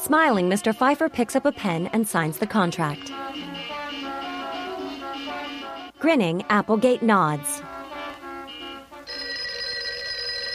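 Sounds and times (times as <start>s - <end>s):
speech: 0.0s - 3.5s, 6.0s - 7.6s
electronic telephone ringing at a desk: 9.1s - 10.5s.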